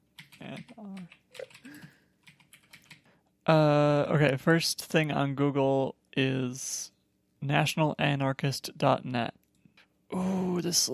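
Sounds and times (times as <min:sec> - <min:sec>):
typing on a computer keyboard: 0:00.1 - 0:03.1
speech: 0:00.4 - 0:01.5, 0:03.5 - 0:09.4, 0:10.1 - 0:10.9.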